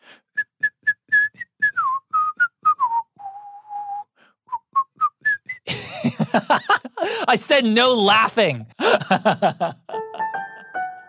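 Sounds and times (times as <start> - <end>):
person whistling a short melody: 0.2 - 5.7
laughter: 5.7 - 7.5, 8.8 - 10.7
speech: 6.3 - 9.8.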